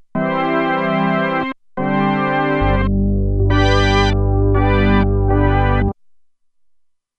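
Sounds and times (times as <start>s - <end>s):
Roland Alpha Juno-2 synthesizer glide organ: 0.2s - 5.9s.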